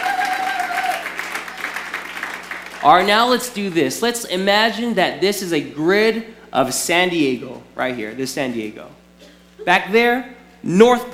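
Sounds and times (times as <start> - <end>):
crowd applauding: 0.0 - 3.9
speech: 2.8 - 9.0, 9.6 - 11.1.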